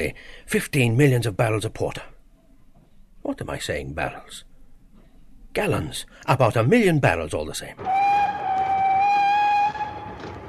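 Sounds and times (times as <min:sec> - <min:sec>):
speech: 0:00.0 - 0:02.2, 0:03.3 - 0:04.5, 0:05.5 - 0:08.2
train rumbling: 0:07.8 - 0:10.4.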